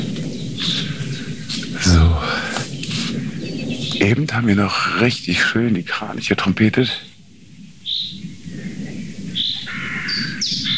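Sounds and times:
crows cawing: 0.0s - 3.8s, 7.9s - 10.7s
low outdoor rumble: 0.0s - 7.2s
speech: 4.0s - 7.1s.

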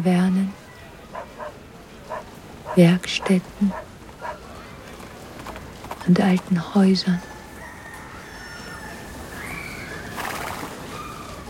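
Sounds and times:
speech: 0.0s - 0.6s, 2.8s - 3.9s, 6.1s - 7.3s
horse hooves of passing carriages clattering along an old street: 1.1s - 6.6s.

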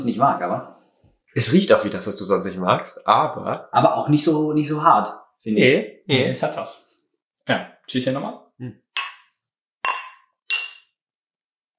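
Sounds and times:
speech: 0.0s - 6.9s, 7.5s - 8.8s
beer glasses clinking: 9.9s - 10.9s.

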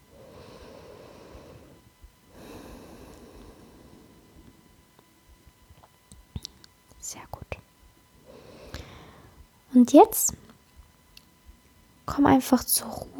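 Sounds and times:
long airy breaths drawn through both nostrils: 0.1s - 4.5s, 8.2s - 9.4s
speech: 7.1s - 7.5s, 9.8s - 10.4s, 12.2s - 13.1s.

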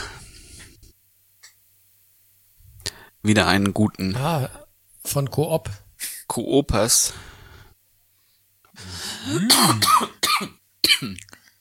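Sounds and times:
speech: 3.2s - 5.8s, 6.4s - 7.4s, 8.8s - 11.4s
man coughing: 9.0s - 11.2s
man clearing his throat: 9.2s - 11.3s.

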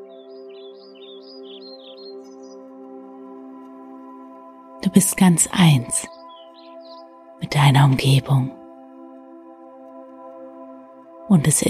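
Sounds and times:
birds chirping and singing in bright warbling notes: 0.0s - 4.2s, 4.8s - 8.7s
speech: 4.8s - 6.2s, 7.5s - 8.6s, 11.3s - 11.6s.

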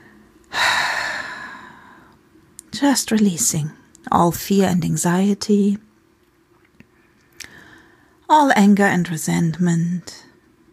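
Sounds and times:
long slow breath exhaled during a guided breathing meditation: 0.1s - 2.2s
speech: 2.8s - 5.9s, 8.3s - 10.3s.

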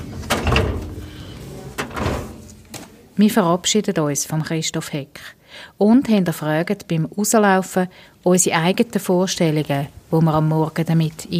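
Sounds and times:
filing drawer with hanging folders rolling shut: 0.0s - 2.7s
speech: 3.2s - 11.3s.

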